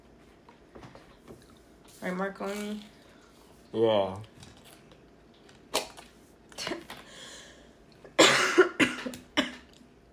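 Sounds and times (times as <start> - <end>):
speech: 2.0 - 3.0, 3.7 - 4.4
person coughing harshly: 8.2 - 9.7.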